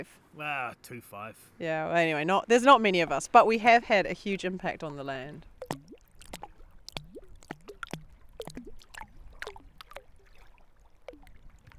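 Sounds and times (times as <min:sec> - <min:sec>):
speech: 0:00.0 - 0:05.9
river water flowing over limestone: 0:02.7 - 0:11.7.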